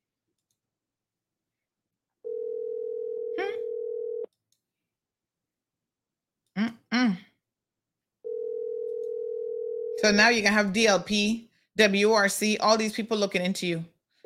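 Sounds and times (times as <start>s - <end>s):
steady low ringback tone of an outgoing telephone call: 2.2s - 4.3s, 8.3s - 10.0s
short vocal noises: 3.4s - 3.6s, 6.5s - 7.4s
speech: 10.0s - 13.9s.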